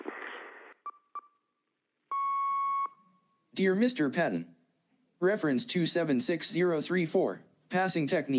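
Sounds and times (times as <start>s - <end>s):
answerphone message beep: 2.1s - 3.0s
speech: 3.6s - 4.6s, 5.2s - 8.3s.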